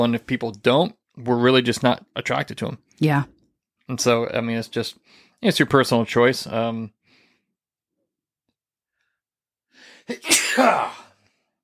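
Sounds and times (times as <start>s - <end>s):
speech: 0.0s - 3.3s, 3.9s - 7.0s, 9.8s - 11.0s
person sneezing: 10.1s - 11.2s.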